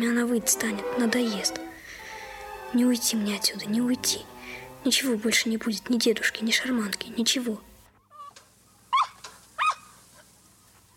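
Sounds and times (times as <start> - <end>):
speech: 0.0 - 1.8, 2.7 - 7.7
dog yelping while being beaten: 8.9 - 9.9.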